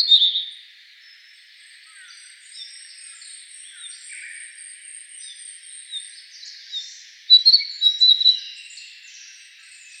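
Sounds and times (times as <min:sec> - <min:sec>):
Narcissus flycatcher singing clear whistled notes: 0:00.0 - 0:00.6, 0:06.8 - 0:08.7.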